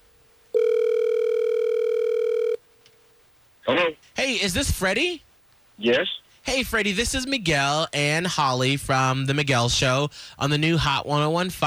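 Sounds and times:
phone call ringback tone: 0.6s - 2.6s
speech: 3.7s - 11.6s.

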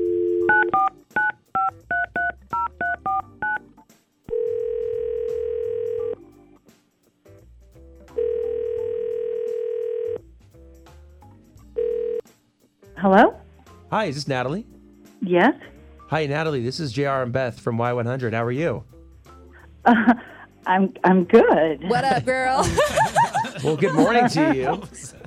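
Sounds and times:
long steady telephone tones: 0.0s - 1.0s, 4.3s - 6.2s, 8.2s - 10.2s, 11.8s - 12.2s
touch-tone dialing beeps as a phone call is placed: 0.0s - 3.6s
speech: 13.0s - 18.9s, 19.9s - 25.2s
laughter: 19.9s - 20.4s, 21.8s - 25.2s.

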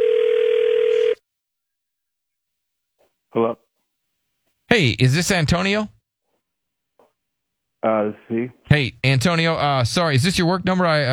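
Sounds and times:
telephone ringing tone over a phone line: 0.0s - 1.2s
speech: 3.3s - 3.6s, 4.7s - 6.0s, 7.8s - 11.1s.

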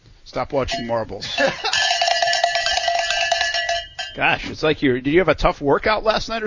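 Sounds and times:
speech: 0.3s - 1.8s, 4.2s - 6.4s
hand bell ringing: 0.7s - 4.2s
laughter: 1.2s - 2.0s.

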